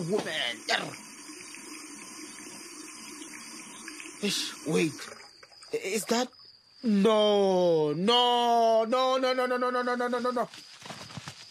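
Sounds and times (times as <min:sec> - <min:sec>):
speech: 0:00.0 - 0:01.1, 0:04.2 - 0:10.7
tap water running from a faucet: 0:00.0 - 0:06.3.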